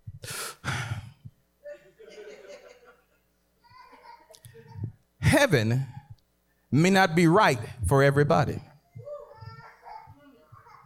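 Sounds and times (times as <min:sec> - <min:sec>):
deep breath: 0:00.2 - 0:01.3
laughter: 0:01.7 - 0:03.3
speech: 0:05.4 - 0:06.0, 0:06.7 - 0:08.7.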